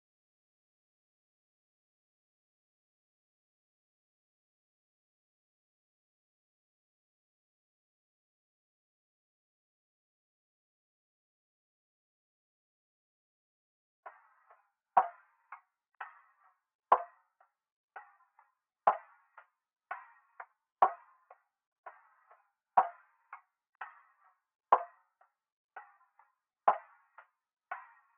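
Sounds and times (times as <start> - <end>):
percussion loop: 14.1 - 28.1.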